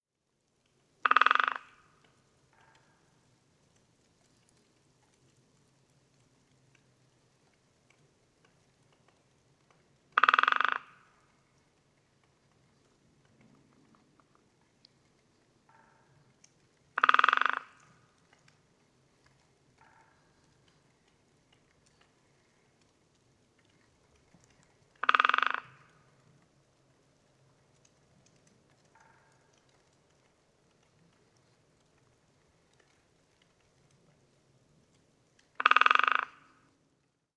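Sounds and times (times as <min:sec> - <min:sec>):
great spotted woodpecker Dendrocopos major drumming: 0:01.0 - 0:01.7, 0:10.2 - 0:10.9, 0:17.0 - 0:17.8, 0:25.0 - 0:25.8, 0:35.6 - 0:36.5.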